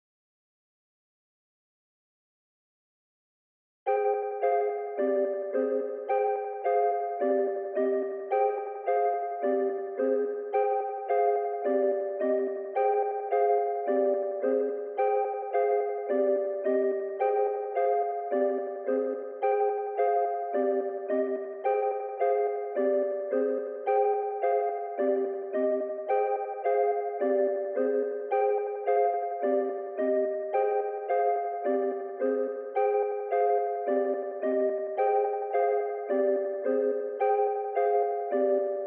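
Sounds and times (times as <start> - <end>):
mellotron melody loop in A minor: 3.9 - 38.8.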